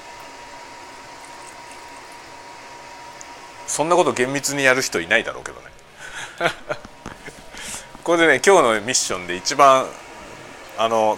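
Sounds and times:
water boiling in a pot: 0.0 - 4.4
speech: 3.7 - 5.8, 6.4 - 6.9, 8.0 - 10.0, 10.8 - 11.1
laughter: 6.0 - 7.5.

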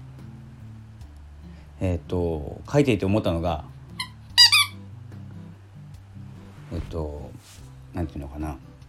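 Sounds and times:
low steady hum: 0.0 - 8.8
speech: 1.8 - 3.8, 6.8 - 7.3, 7.9 - 8.7
dog squeaky toy squeaking: 4.0 - 4.8.

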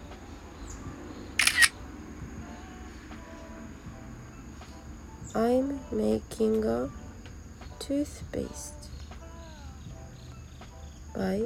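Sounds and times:
low steady hum: 0.0 - 11.4
camera shutter clicking as a photo is taken: 1.4 - 1.8
speech: 5.3 - 7.0, 7.9 - 8.8, 11.2 - 11.4.

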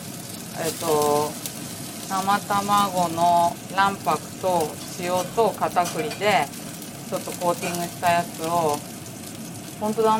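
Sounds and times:
shrimp coated with egg white, salt and potato starch frying in hot oil: 0.0 - 10.1
speech: 0.6 - 1.5, 2.1 - 8.9, 9.8 - 10.1.

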